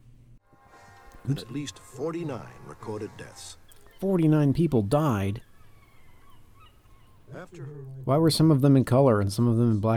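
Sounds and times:
goose honking: 0.7 - 7.9
speech: 1.2 - 5.5, 7.3 - 9.9.

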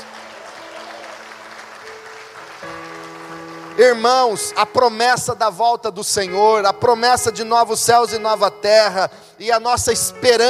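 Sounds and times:
congregation clapping: 0.0 - 4.8
sustained organ or keyboard tones: 1.3 - 10.4
speech: 3.8 - 10.4.

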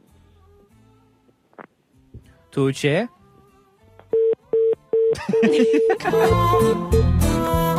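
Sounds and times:
speech: 2.6 - 3.2, 5.2 - 7.6
telephone busy tone after caller hangs up: 4.1 - 6.8
people laughing: 5.2 - 6.6.

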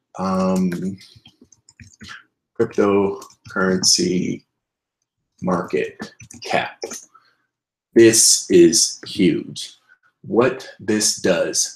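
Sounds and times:
speech: 0.2 - 1.3, 2.0 - 4.5, 5.4 - 7.1, 8.0 - 11.7
typing on a computer keyboard into a search box: 0.3 - 2.1.

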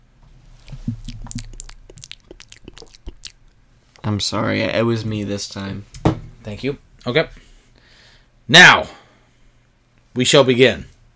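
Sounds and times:
person sipping a drink: 0.5 - 3.6
gulp: 0.6 - 3.5
mouth clicks: 0.6 - 3.6
speech: 4.1 - 5.9, 6.5 - 7.4, 8.5 - 9.0, 10.2 - 10.9.

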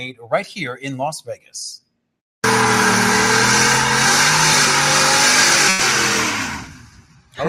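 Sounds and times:
speech: 0.0 - 1.8
2020 Shelby F-150 Super Snake Sport pickup truck engine revving during a burnout: 2.4 - 7.1
rough hiss of spinning pickup truck tires during a burnout: 2.5 - 7.1.

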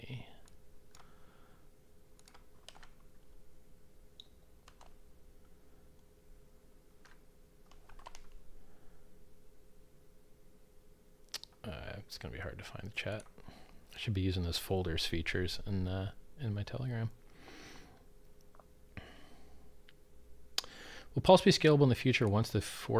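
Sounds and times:
low steady hum: 0.0 - 22.9
message typed on a computer keyboard: 0.4 - 1.1, 2.2 - 3.1, 4.6 - 5.0, 7.0 - 8.4
speech: 12.2 - 13.4, 14.0 - 17.2, 21.2 - 22.9.

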